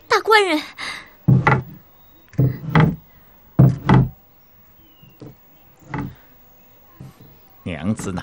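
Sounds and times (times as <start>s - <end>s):
heavy wooden door panels of a medicine shop thudding shut: 1.3s - 1.8s, 2.4s - 4.2s, 5.1s - 6.2s.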